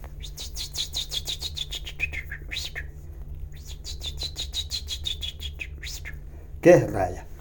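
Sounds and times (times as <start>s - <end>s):
person whistling an imitation of a chaffinch song: 0.2s - 2.9s, 3.5s - 6.2s
speech: 6.7s - 7.3s.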